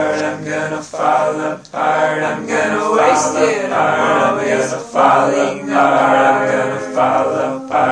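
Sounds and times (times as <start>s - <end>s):
male vocal harmony loop: 0.0s - 7.9s.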